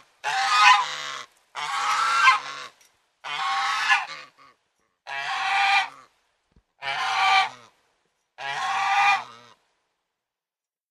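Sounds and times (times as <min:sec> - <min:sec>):
domestic goose honking: 0:00.2 - 0:06.1, 0:06.8 - 0:07.7, 0:08.4 - 0:09.6.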